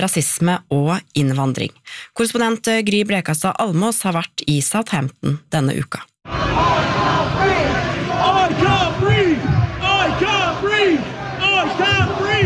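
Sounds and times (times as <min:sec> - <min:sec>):
speech: 0:00.0 - 0:06.7
large angry crowd chanting a shouted phrase: 0:06.3 - 0:12.4.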